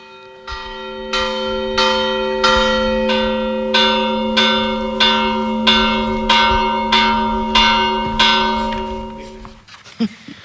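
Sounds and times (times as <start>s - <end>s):
church bells in Guillena tolling: 0.0s - 9.6s.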